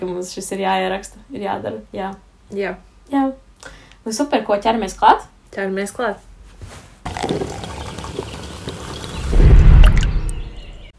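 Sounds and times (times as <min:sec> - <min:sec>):
speech: 0:00.0 - 0:07.4
iced coffee pouring into a cup: 0:07.1 - 0:10.1.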